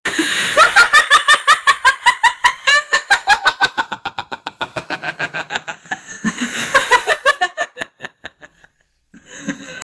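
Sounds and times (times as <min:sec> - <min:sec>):
laughing effects with static: 0:00.1 - 0:09.9.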